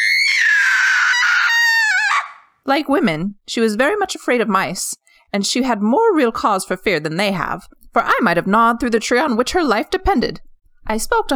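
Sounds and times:
woman screaming: 0:00.0 - 0:02.6
speech: 0:02.6 - 0:11.3.

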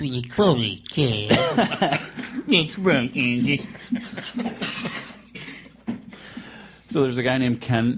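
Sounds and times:
speech: 0:00.0 - 0:04.9, 0:06.9 - 0:07.9
person coughing rough breathy bursts: 0:01.3 - 0:01.7, 0:04.4 - 0:05.8
laughter: 0:01.3 - 0:06.0.

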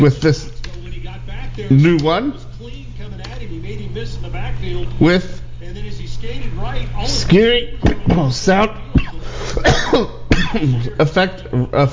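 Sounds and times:
speech: 0:00.0 - 0:00.5, 0:01.6 - 0:02.8, 0:03.5 - 0:11.9
person coughing with throat-clearing: 0:09.0 - 0:10.9.

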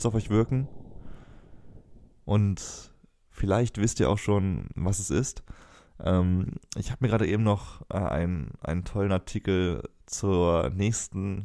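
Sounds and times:
speech: 0:00.0 - 0:00.8, 0:02.3 - 0:11.4
low rumbling wind on Mars: 0:00.0 - 0:05.0.

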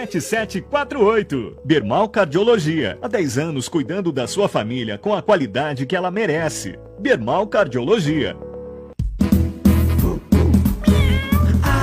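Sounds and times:
speech: 0:00.0 - 0:08.4
loud steady musical backing: 0:08.9 - 0:11.8
cat meowing: 0:10.8 - 0:11.8.

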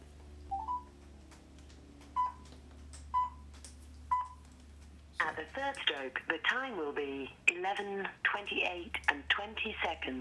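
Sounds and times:
faint low hum: 0:00.0 - 0:10.1
electronic phone keypad dialing tones: 0:00.5 - 0:00.9, 0:02.2 - 0:02.4
speech: 0:05.3 - 0:10.1.

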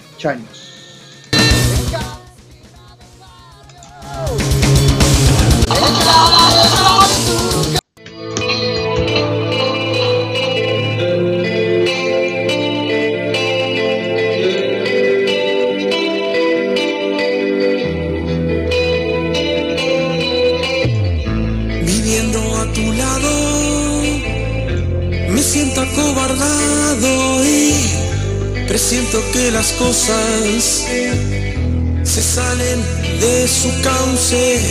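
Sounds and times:
speech: 0:00.2 - 0:00.7, 0:01.9 - 0:02.2, 0:29.3 - 0:31.4, 0:32.2 - 0:34.6
band song with deep bass, reverb-soaked guitars and distortion: 0:01.2 - 0:02.5, 0:03.5 - 0:34.6
laughter: 0:05.3 - 0:07.8.

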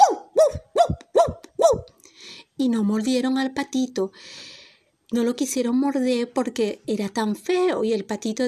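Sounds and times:
dog barking: 0:00.0 - 0:01.9
speech: 0:02.6 - 0:04.5, 0:05.1 - 0:08.4.

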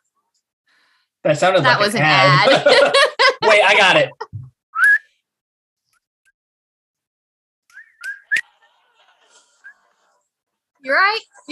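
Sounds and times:
speech: 0:01.2 - 0:04.4, 0:10.8 - 0:11.5
laughter: 0:02.0 - 0:04.5
person whistling a short high tune: 0:04.8 - 0:05.1, 0:07.7 - 0:08.4.

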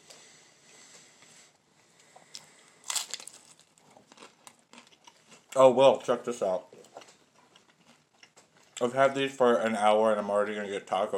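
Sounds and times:
person crunching loudly while eating: 0:02.3 - 0:08.9
speech: 0:05.6 - 0:06.8, 0:08.8 - 0:11.1.

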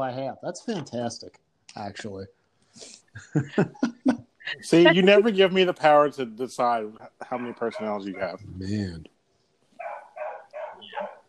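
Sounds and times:
speech: 0:00.0 - 0:09.1
laughter: 0:03.2 - 0:09.0
puppy barking high-pitched yips: 0:07.3 - 0:08.4, 0:09.8 - 0:11.2.

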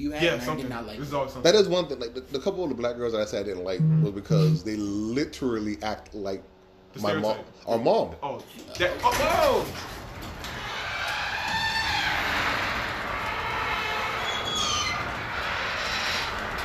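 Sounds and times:
speech: 0:00.0 - 0:10.0
brief voice-like sound: 0:03.8 - 0:04.6
garage door opening: 0:08.8 - 0:16.6.

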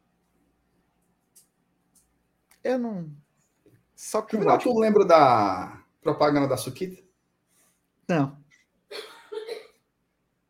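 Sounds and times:
speech: 0:02.6 - 0:03.2, 0:04.0 - 0:07.0, 0:08.1 - 0:09.1
person coughing: 0:08.9 - 0:09.8.

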